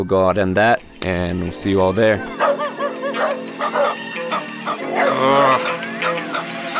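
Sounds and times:
speech: 0:00.0 - 0:02.4
steady droning musical background: 0:00.0 - 0:06.7
several dogs barking and yipping: 0:01.8 - 0:06.7.

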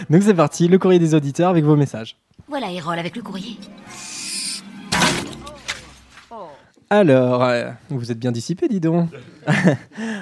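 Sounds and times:
speech: 0:00.1 - 0:04.1, 0:06.3 - 0:10.2
loud sweeping crash sound effect: 0:03.0 - 0:06.3
owl hooting: 0:03.8 - 0:04.7
laughter: 0:09.1 - 0:10.0.

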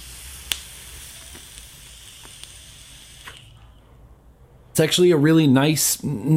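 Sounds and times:
sharp click of a pod vape: 0:00.0 - 0:03.6
speech: 0:04.8 - 0:06.3.

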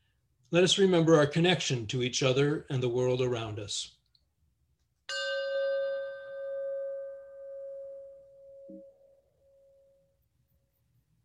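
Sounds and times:
speech: 0:00.5 - 0:04.0
meditation chime struck and ringing: 0:05.1 - 0:10.2.

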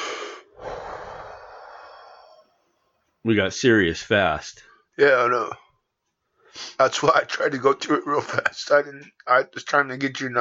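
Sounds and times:
deep breath: 0:00.0 - 0:02.6
speech: 0:03.2 - 0:05.6, 0:06.5 - 0:10.3.

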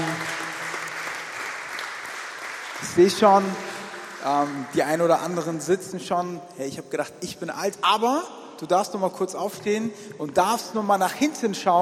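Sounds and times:
audience applause: 0:00.0 - 0:05.4
speech: 0:02.8 - 0:11.7.

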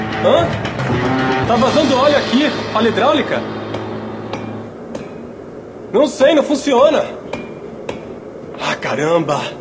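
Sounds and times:
speech: 0:00.2 - 0:03.6, 0:05.9 - 0:07.2, 0:08.6 - 0:09.5
power hammer pounding metal: 0:01.3 - 0:06.0, 0:06.8 - 0:08.3
steady mechanical hum: 0:01.5 - 0:09.5.

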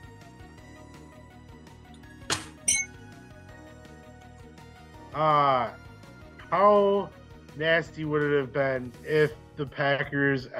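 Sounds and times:
bright bell dings: 0:02.6 - 0:03.0
speech: 0:05.2 - 0:05.8, 0:06.5 - 0:10.5.

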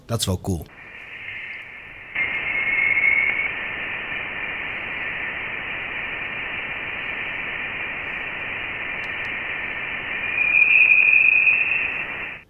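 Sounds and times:
speech: 0:00.1 - 0:00.8
interstellar plasma waves recorded by a space probe plasma wave instrument: 0:00.4 - 0:12.4
thin high whistling tones from interstellar plasma waves: 0:00.9 - 0:04.9, 0:09.7 - 0:12.4.

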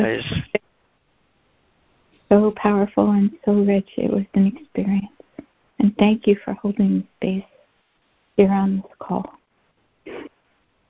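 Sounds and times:
person sneezing: 0:00.0 - 0:00.5
speech: 0:00.0 - 0:00.5, 0:02.3 - 0:05.2, 0:05.8 - 0:07.5, 0:08.4 - 0:09.4.

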